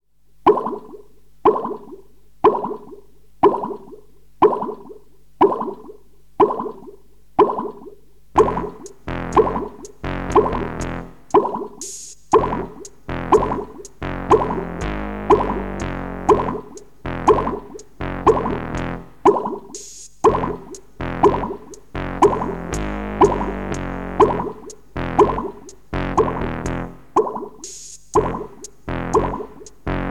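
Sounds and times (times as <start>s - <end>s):
water dripping: 0.4s - 30.0s.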